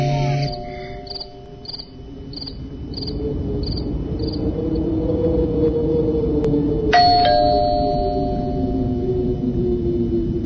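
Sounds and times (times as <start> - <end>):
steady low hum: 0.0 - 10.4
doorbell chiming: 0.3 - 1.7, 7.0 - 8.8.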